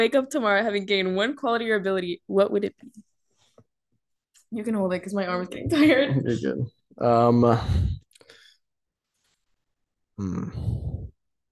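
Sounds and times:
speech: 0:00.0 - 0:03.1, 0:04.5 - 0:08.0, 0:10.2 - 0:11.1
heavy breathing close to the microphone: 0:07.4 - 0:08.6, 0:10.4 - 0:11.1.

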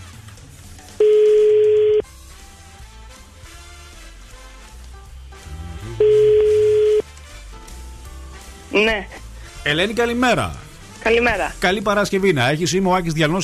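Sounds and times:
quiet music: 0:00.0 - 0:13.4
long steady telephone ringback tones: 0:01.0 - 0:02.0, 0:06.0 - 0:07.0
speech: 0:08.8 - 0:13.4.

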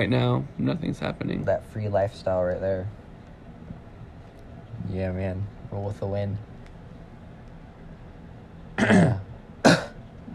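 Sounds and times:
speech: 0:00.0 - 0:03.0, 0:04.8 - 0:06.5, 0:08.8 - 0:09.2
coughing and throat clearing: 0:08.8 - 0:10.0.

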